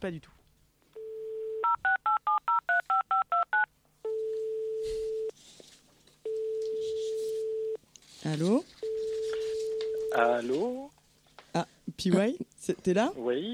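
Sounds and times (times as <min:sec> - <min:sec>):
speech: 0:00.0 - 0:00.4, 0:08.2 - 0:08.8, 0:10.2 - 0:10.9, 0:11.6 - 0:13.5
telephone dial tone: 0:01.0 - 0:02.2, 0:04.1 - 0:05.3, 0:06.3 - 0:07.8, 0:08.8 - 0:10.3
long phone ringing tones: 0:01.0 - 0:05.3, 0:06.2 - 0:07.8, 0:08.8 - 0:10.6.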